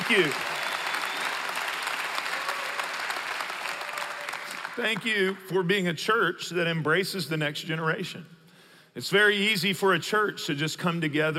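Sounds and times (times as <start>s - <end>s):
church audience applauding: 0.0s - 5.4s
speech: 0.1s - 0.5s, 4.8s - 8.4s, 9.0s - 11.3s.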